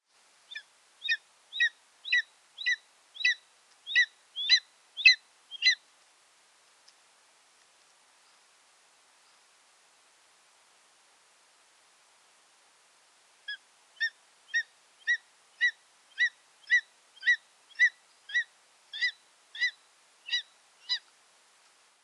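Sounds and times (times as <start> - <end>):
black eagle calling: 0.5 - 5.8, 13.5 - 21.1.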